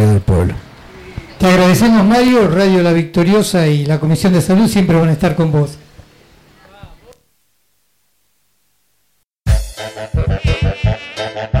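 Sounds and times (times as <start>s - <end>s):
speech: 0.0s - 0.6s, 1.4s - 5.8s
mosquito buzzing: 9.8s - 11.5s.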